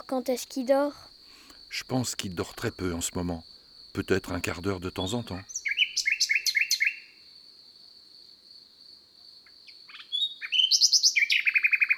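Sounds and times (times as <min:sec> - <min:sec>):
speech: 0:00.0 - 0:01.1, 0:01.7 - 0:05.6
bird singing in high rapid chirping trills: 0:04.9 - 0:07.2, 0:09.9 - 0:11.9.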